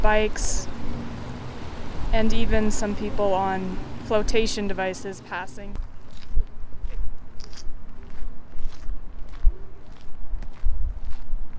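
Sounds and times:
speech: 0:00.0 - 0:00.7, 0:02.1 - 0:05.8
low ambient rumble: 0:00.0 - 0:11.5
footsteps walking through a busy park: 0:05.7 - 0:11.5.

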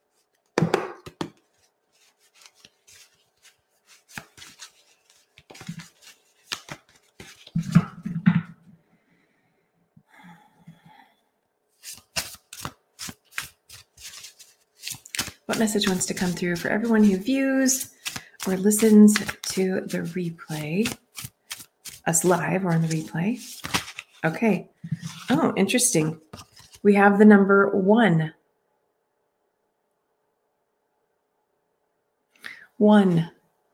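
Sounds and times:
Rolodex card deck being shuffled: 0:00.1 - 0:08.0, 0:11.8 - 0:24.3, 0:24.9 - 0:25.5, 0:26.2 - 0:26.8
speech: 0:15.6 - 0:21.0, 0:22.1 - 0:23.6, 0:24.2 - 0:24.7, 0:25.3 - 0:28.4, 0:32.8 - 0:33.4.

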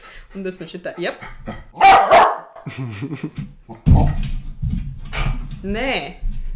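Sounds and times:
speech: 0:00.3 - 0:04.3, 0:05.6 - 0:06.3
dog barking: 0:01.8 - 0:02.6
laughter: 0:02.6 - 0:03.4.

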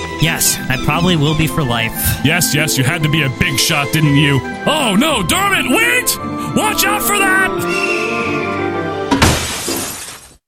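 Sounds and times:
speech: 0:00.2 - 0:08.5
glass shattering: 0:09.1 - 0:10.4.

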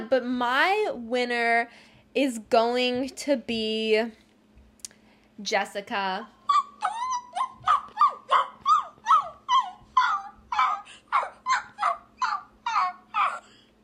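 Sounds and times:
speech: 0:00.1 - 0:04.2, 0:05.4 - 0:06.4
person imitating sad whining shelter dogs: 0:06.4 - 0:13.5.

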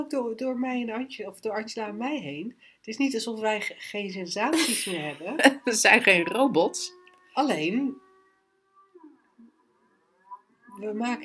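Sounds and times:
speech: 0:00.0 - 0:08.0, 0:10.8 - 0:11.2
laughter: 0:03.6 - 0:06.3
civil defense warning siren wailing: 0:06.1 - 0:11.0.

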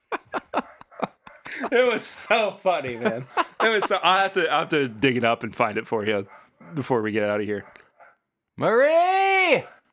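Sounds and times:
laughter: 0:00.0 - 0:05.3
female dog barking with howling tone: 0:00.4 - 0:01.7, 0:06.2 - 0:08.2, 0:09.6 - 0:09.8
speech: 0:01.6 - 0:07.8, 0:08.6 - 0:09.7.

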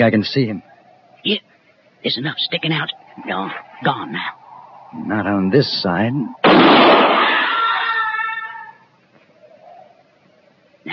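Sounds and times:
speech: 0:00.0 - 0:07.0
rifle gunshot: 0:06.4 - 0:07.4.

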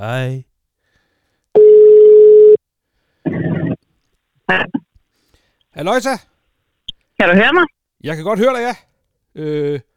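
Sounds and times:
speech: 0:00.0 - 0:00.5, 0:04.5 - 0:04.8, 0:05.8 - 0:06.3, 0:07.2 - 0:09.9
telephone ringing tone while placing a call to an ordinary phone number: 0:01.6 - 0:02.6.

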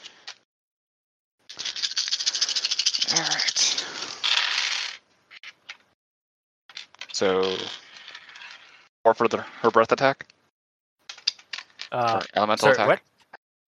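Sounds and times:
dice rolled for an attack in a tabletop game: 0:01.5 - 0:05.8, 0:06.7 - 0:08.8, 0:11.1 - 0:12.4
speech: 0:07.2 - 0:07.8, 0:09.0 - 0:10.3, 0:11.9 - 0:13.1.

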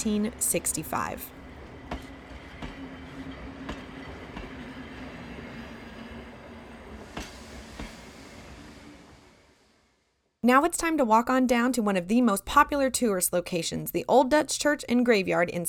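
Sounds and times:
speech: 0:00.0 - 0:01.4, 0:10.4 - 0:15.6
irregular clanks and rail clatter: 0:00.0 - 0:09.6
train rumbling past: 0:00.0 - 0:10.4.

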